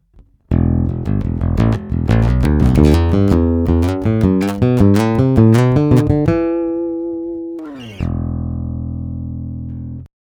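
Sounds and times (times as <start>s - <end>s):
bass: 0.0s - 10.1s.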